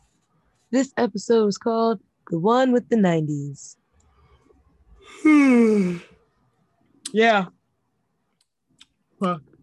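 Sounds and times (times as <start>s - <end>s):
speech: 0.7s - 3.8s, 5.1s - 6.1s, 7.1s - 7.6s, 9.2s - 9.5s
sleepy person yawning: 5.1s - 6.1s.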